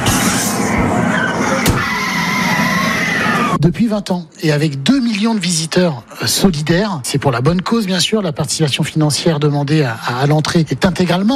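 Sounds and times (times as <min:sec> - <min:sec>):
tire squeal: 0:00.0 - 0:03.6
traffic on a busy city street in Tokyo: 0:00.0 - 0:03.6
speech: 0:03.6 - 0:11.3.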